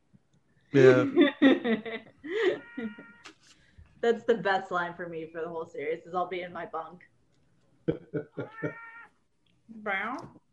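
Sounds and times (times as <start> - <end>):
speech: 0.7 - 3.0, 4.0 - 7.1, 7.9 - 8.8, 9.7 - 10.4
laughter: 0.8 - 2.9, 7.9 - 8.7
cat meowing: 8.4 - 9.1.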